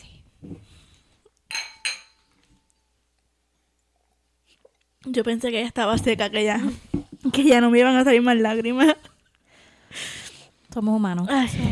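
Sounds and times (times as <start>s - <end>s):
glasses clinking together in a toast: 1.5s - 2.4s
speech: 5.0s - 9.1s, 10.8s - 11.7s.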